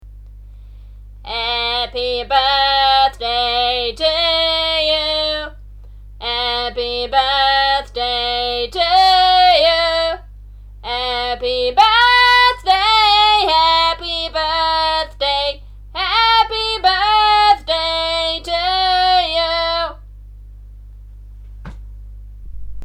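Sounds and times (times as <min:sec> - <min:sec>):
person singing a birthday song with pressed voice: 0:01.2 - 0:05.6, 0:06.2 - 0:20.0.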